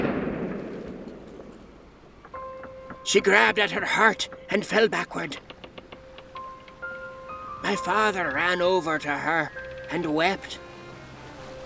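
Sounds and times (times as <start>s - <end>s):
pistol shot: 0.0s - 1.8s
speech: 3.1s - 5.5s, 7.6s - 10.6s.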